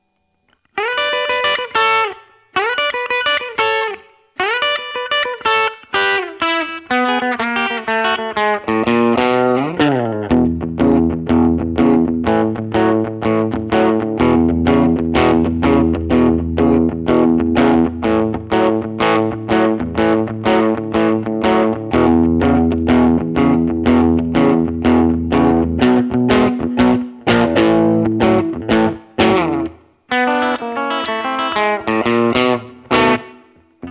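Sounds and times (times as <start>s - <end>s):
electric guitar with Hot Rails pickups played clean: 0.0s - 33.9s.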